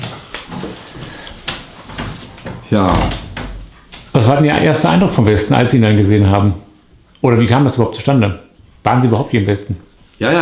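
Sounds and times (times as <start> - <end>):
rustling noisy background: 0.0 - 10.4
door closing with a soft knock and bump: 1.8 - 4.1
speech: 2.7 - 3.2, 4.3 - 6.6, 7.2 - 10.4.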